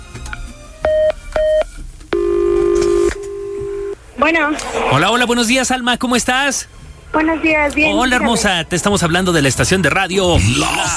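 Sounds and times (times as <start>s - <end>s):
sustained telephone tone: 0.9s - 4.0s
electronic telephone dialing tones: 2.2s - 4.0s
speech: 4.2s - 10.9s.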